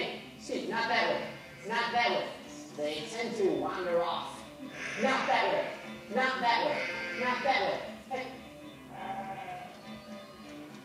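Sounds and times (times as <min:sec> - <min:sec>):
sheep bleating: 0:01.0 - 0:02.2, 0:04.6 - 0:08.0, 0:08.7 - 0:10.8
speech: 0:01.6 - 0:08.4.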